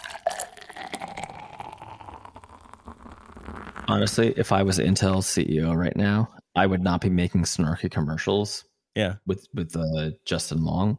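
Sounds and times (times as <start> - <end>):
liquid pouring in a steady splashing stream: 0.0 - 4.4
speech: 3.9 - 10.9.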